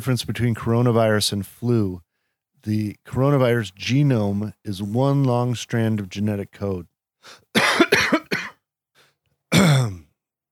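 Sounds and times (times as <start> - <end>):
speech: 0.0 - 7.9
person coughing dry coughs: 7.5 - 8.6, 9.5 - 10.1.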